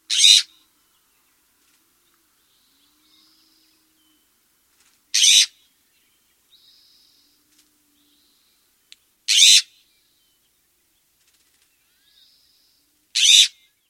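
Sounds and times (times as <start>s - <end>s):
western scrub jay calling: 0.1s - 0.5s, 5.2s - 5.6s, 9.3s - 9.7s, 13.2s - 13.6s.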